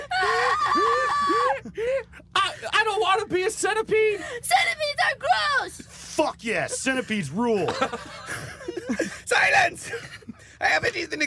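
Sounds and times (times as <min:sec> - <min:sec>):
two girls scream-crying with high wails: 0:00.0 - 0:01.7
speech: 0:02.9 - 0:11.2
laughter: 0:06.4 - 0:11.1.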